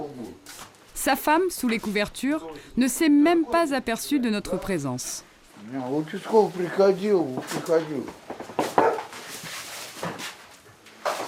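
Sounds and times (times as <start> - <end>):
speech: 1.0 - 8.3
rustling: 6.1 - 11.2
dog barking and whining: 8.8 - 9.1.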